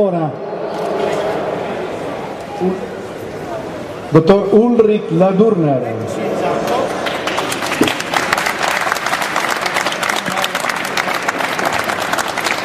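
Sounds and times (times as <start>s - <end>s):
speech: 0.0s - 0.8s, 2.6s - 2.9s, 4.1s - 6.7s
audience applause in Rome: 6.3s - 12.6s.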